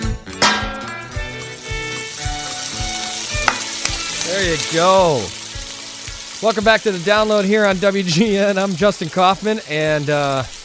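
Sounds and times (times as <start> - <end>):
frying pan sizzling: 0.0 - 10.6
sustained tones: 0.4 - 3.2
speech: 4.4 - 5.4, 6.4 - 10.6.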